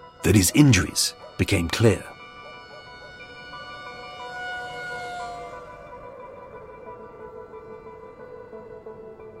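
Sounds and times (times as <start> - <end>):
speech: 0.3 - 2.1
ambulance siren wailing: 2.1 - 6.0.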